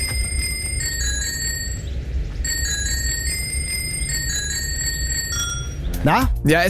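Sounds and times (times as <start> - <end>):
bicycle bell ringing a pop melody: 0.0 - 5.9
low rumbling noise: 0.0 - 6.6
speech: 6.0 - 6.6.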